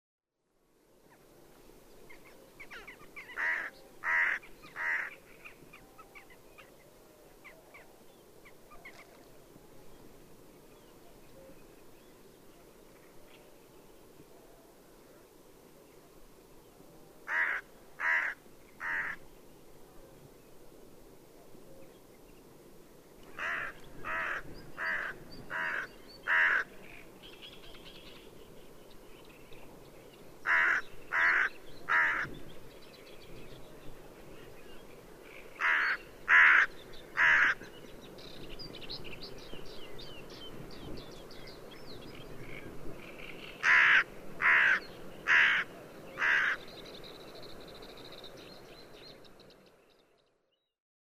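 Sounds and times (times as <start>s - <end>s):
hooded crow Corvus cornix: 2.6s - 5.2s, 17.3s - 19.2s, 23.3s - 27.0s, 30.4s - 32.4s, 35.6s - 37.7s, 43.6s - 46.6s.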